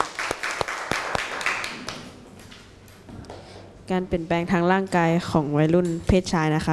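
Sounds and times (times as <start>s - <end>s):
small group of students clapping in applause for student representatives: 0.0s - 2.2s
speech: 3.9s - 6.7s.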